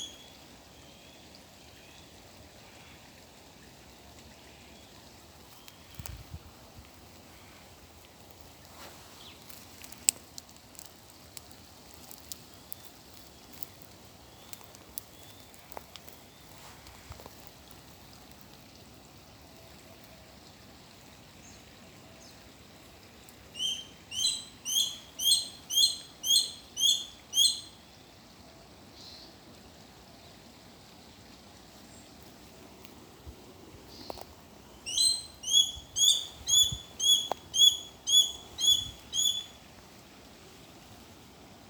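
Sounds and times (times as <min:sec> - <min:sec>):
Grey Goshawk Tachyspiza novaehollandiae calling: 0:23.6 - 0:27.7, 0:34.9 - 0:39.6.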